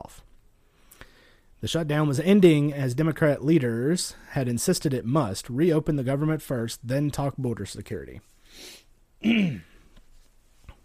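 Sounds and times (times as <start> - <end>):
speech: 1.6 - 9.7
loud throat clearing: 9.2 - 9.8.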